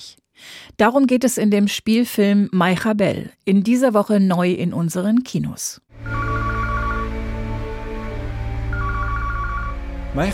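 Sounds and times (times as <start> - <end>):
speech: 0.8 - 6.2, 10.2 - 10.3
telephone ringing with warbling electronic trill: 6.0 - 7.7, 8.7 - 9.9.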